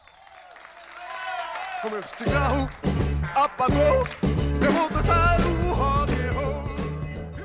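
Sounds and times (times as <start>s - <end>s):
speech: 1.8s - 5.6s
song with sung vocals playing in a car: 1.8s - 7.4s.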